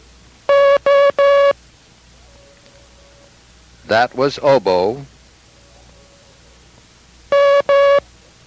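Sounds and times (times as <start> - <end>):
Morse code dash beeps for the letter M: 0.5 - 1.6, 7.3 - 8.0
speech: 3.9 - 5.1.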